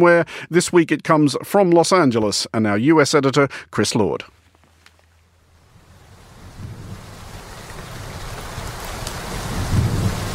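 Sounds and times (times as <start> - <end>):
speech: 0.0 - 4.4
heavy rain pouring: 5.5 - 10.3
deep thunder rumbling: 6.3 - 10.3.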